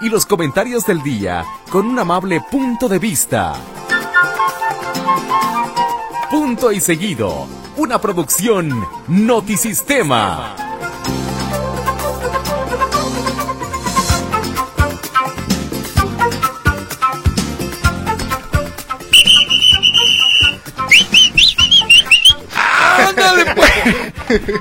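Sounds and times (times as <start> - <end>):
speech: 0.0 - 4.3, 6.3 - 11.3, 24.4 - 24.5
music: 0.0 - 24.5
loud piercing human whistling: 19.1 - 22.4
laughter: 22.2 - 24.5.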